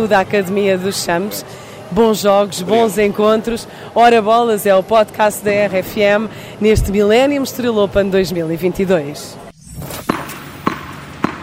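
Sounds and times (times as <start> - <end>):
speech: 0.0 - 9.4
tennis ball bouncing: 10.1 - 11.4.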